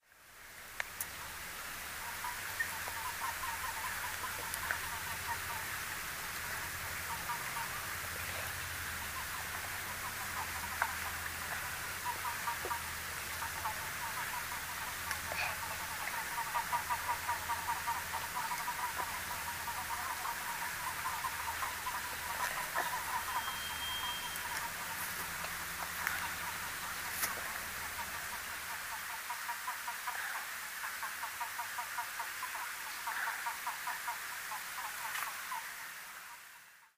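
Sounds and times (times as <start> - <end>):
western toads calling: 0.9 - 36.5.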